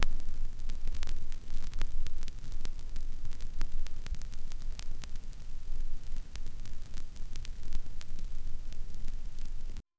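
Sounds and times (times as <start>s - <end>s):
vinyl needle dropping onto a record: 0.0s - 9.8s.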